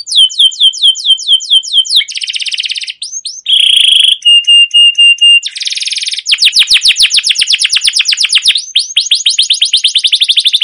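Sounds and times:
canary trilled song for training and luring canaries: 0.0 - 10.6.

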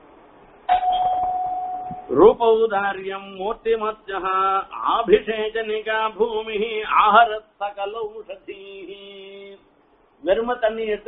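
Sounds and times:
doorbell chime: 0.7 - 2.1
speech: 2.1 - 9.3, 10.2 - 11.0.

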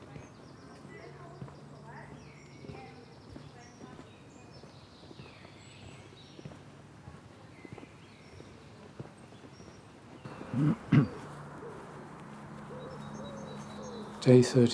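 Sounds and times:
faint scattered bird chirps outdoors: 0.0 - 14.7
loud low cooing bird calls: 10.2 - 14.7
steady outdoor ambient hush: 10.3 - 14.6
speech: 10.6 - 10.8, 14.2 - 14.7.

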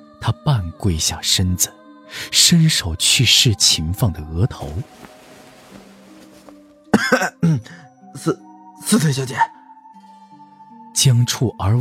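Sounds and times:
speech: 0.2 - 5.1, 7.4 - 9.6, 11.0 - 11.7
person imitating a nervous cough: 7.0 - 7.8.

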